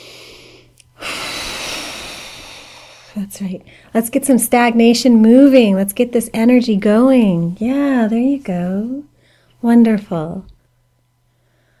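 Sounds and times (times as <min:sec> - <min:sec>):
deep cleansing exhale during a guided breathing exercise: 0:00.0 - 0:03.2
speech: 0:03.2 - 0:10.5.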